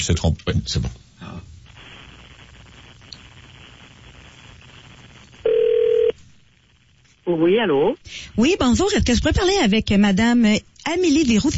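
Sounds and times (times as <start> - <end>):
speech: 0.0 - 1.0, 7.3 - 11.5
faint hiss: 0.0 - 11.5
telephone tone as a number is dialed: 5.4 - 6.1.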